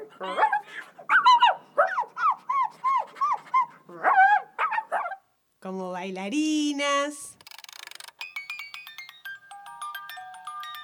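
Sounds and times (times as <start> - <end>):
dog yipping and whimpering: 0.0 - 5.2
speech: 0.2 - 0.9, 5.7 - 7.3.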